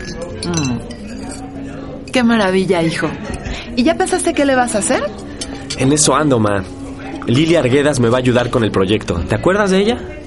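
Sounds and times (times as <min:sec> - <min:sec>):
glasses clinking in a toast: 0:00.0 - 0:03.5, 0:05.2 - 0:06.3
speech: 0:02.2 - 0:05.2, 0:05.8 - 0:10.2.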